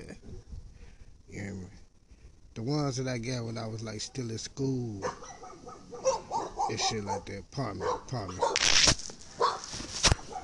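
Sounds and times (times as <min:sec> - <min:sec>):
faint hum: 0:00.0 - 0:10.4
speech: 0:02.6 - 0:05.4, 0:06.7 - 0:09.0
dogs barking: 0:04.9 - 0:08.6, 0:09.3 - 0:10.4.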